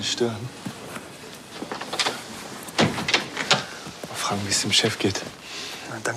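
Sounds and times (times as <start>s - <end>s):
speech: 0.0s - 0.7s, 4.3s - 6.1s
door opening clatter: 1.6s - 3.8s.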